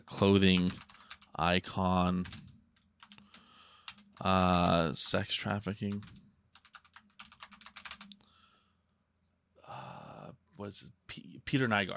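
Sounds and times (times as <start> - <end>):
speech: 0.1 - 2.5, 4.2 - 6.2, 10.6 - 11.9
typing on a sensitive computer keyboard: 0.5 - 1.4, 2.2 - 4.3, 5.9 - 8.2.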